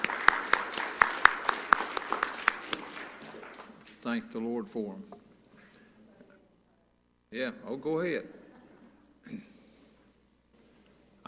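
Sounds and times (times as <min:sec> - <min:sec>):
modest audience applauding with sparse crisp hand claps: 0:00.0 - 0:04.5
speech: 0:04.1 - 0:05.2, 0:07.3 - 0:08.4.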